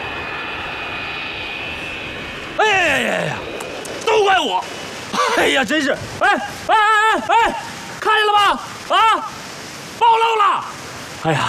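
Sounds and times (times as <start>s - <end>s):
airplane flying low overhead: 0.0s - 8.0s
speech: 4.3s - 4.8s, 5.4s - 7.6s, 8.2s - 9.4s, 10.0s - 11.4s.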